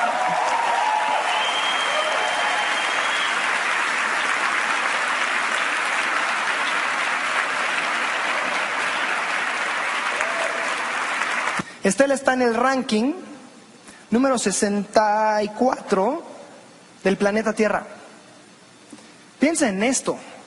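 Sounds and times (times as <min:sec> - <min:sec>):
audience applauding: 0:00.0 - 0:11.6
speech: 0:11.9 - 0:13.3, 0:14.1 - 0:16.3, 0:17.0 - 0:18.0, 0:19.4 - 0:20.3.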